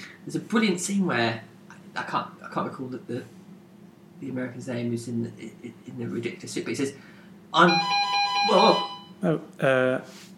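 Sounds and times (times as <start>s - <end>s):
speech: 0.2s - 3.4s, 4.2s - 10.3s
electronic doorbell ringing downstairs: 7.6s - 9.2s.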